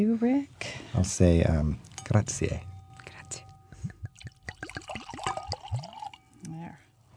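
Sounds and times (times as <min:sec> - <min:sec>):
speech: 0:00.0 - 0:02.7
wine glugging as it is poured into a glass: 0:04.0 - 0:06.4.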